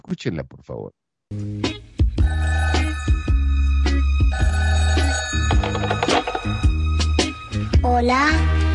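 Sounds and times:
speech: 0:00.1 - 0:01.6, 0:08.0 - 0:08.6
telephone bell ringing: 0:02.2 - 0:06.8.

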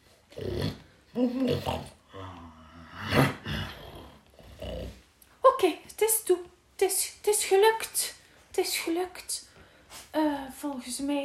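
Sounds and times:
voice imitating a wolf's groaning and grumbling complaints: 0:00.4 - 0:05.0
speech: 0:01.2 - 0:02.0, 0:05.6 - 0:09.5, 0:10.1 - 0:11.2.

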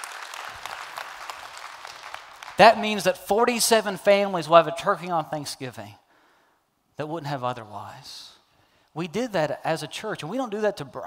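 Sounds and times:
church audience applauding: 0:00.0 - 0:03.1
speech: 0:02.6 - 0:06.0, 0:07.0 - 0:08.4, 0:09.0 - 0:11.0.

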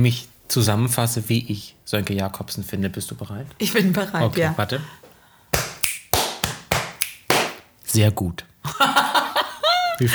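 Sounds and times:
speech: 0:00.0 - 0:05.0, 0:07.9 - 0:09.0, 0:10.0 - 0:10.1
body percussion slaps or taps: 0:05.5 - 0:07.7
finger snaps in body percussion: 0:05.6 - 0:07.6
laughter: 0:08.6 - 0:10.1.

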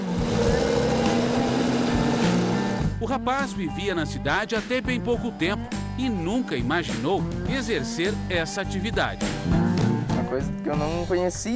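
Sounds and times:
latest-generation farm tractor diesel engine running in Rio Grande do Sul: 0:00.0 - 0:03.0
speech: 0:03.1 - 0:09.6, 0:10.3 - 0:11.5.

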